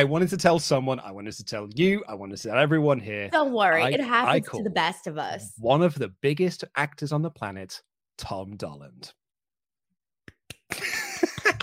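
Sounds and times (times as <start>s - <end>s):
speech: 0.0s - 9.2s, 11.2s - 11.6s
sharp hand claps: 10.3s - 11.6s.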